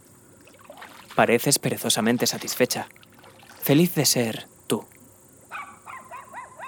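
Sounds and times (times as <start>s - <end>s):
speech: 1.2s - 3.0s, 3.7s - 5.0s
small dog barking: 5.5s - 6.6s.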